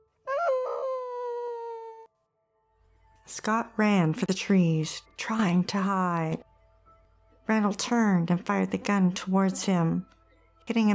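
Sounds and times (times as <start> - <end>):
dog howling at night: 0.3 - 2.1
speech: 3.3 - 6.5, 7.5 - 10.9.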